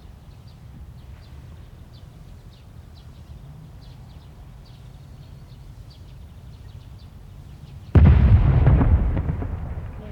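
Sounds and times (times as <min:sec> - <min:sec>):
cannon shot with deep rumbling echo: 0:08.0 - 0:10.1.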